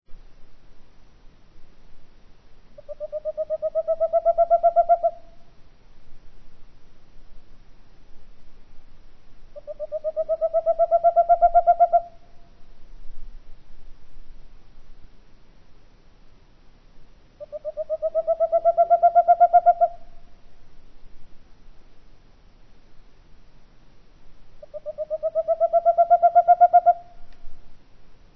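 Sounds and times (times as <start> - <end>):
boreal owl calling: 2.8 - 5.5, 9.5 - 12.5, 17.4 - 20.4, 24.6 - 27.4.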